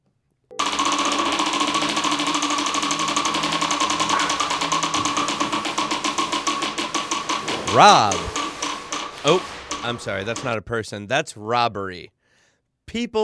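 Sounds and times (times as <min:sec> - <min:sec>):
prize wheel being spun: 0:00.5 - 0:10.6
speech: 0:07.7 - 0:08.3, 0:09.2 - 0:12.2, 0:12.9 - 0:13.2.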